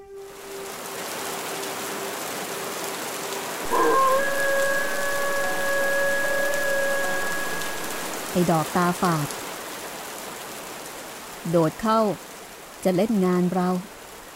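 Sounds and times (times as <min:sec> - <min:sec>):
rain falling: 0:00.2 - 0:14.3
sustained high-pitched tone: 0:03.7 - 0:08.6
speech: 0:08.4 - 0:09.4, 0:11.4 - 0:13.9.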